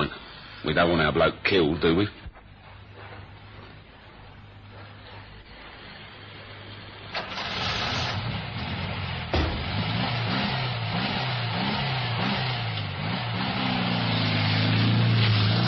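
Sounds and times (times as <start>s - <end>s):
speech: 0.6s - 2.2s
taxi engine droning as the car drives away at night: 3.0s - 15.6s
dull thud: 9.3s - 10.3s.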